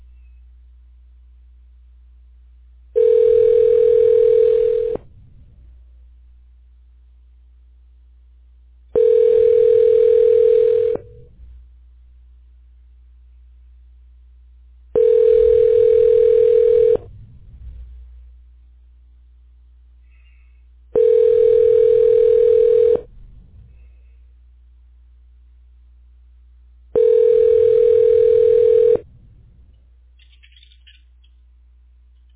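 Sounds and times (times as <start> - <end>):
telephone ringback tone while connecting a call: 3.0 - 5.0, 9.0 - 11.1, 15.0 - 17.0, 21.0 - 23.1, 27.0 - 29.0.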